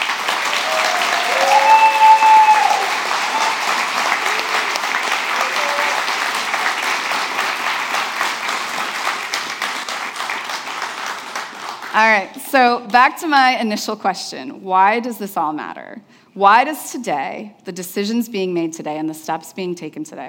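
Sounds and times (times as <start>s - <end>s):
audience applauding: 0.0s - 12.0s
faint cheers: 0.4s - 6.2s
speech: 12.0s - 20.2s.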